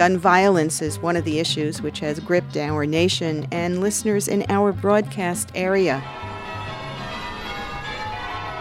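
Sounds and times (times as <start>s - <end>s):
speech: 0.0s - 6.3s
church bells ringing: 6.0s - 8.5s.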